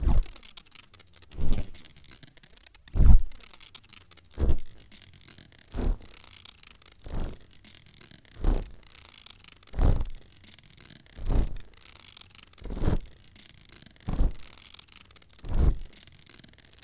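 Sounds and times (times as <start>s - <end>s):
windmill: 0.0s - 1.8s, 3.0s - 16.8s.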